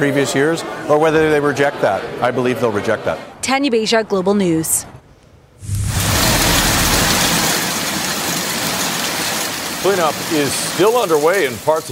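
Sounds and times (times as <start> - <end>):
speech: 0.0 - 5.0, 9.8 - 11.9
low rumble: 5.6 - 7.6
damaging hail and heavy rain in Maple Ridge: 5.6 - 11.9.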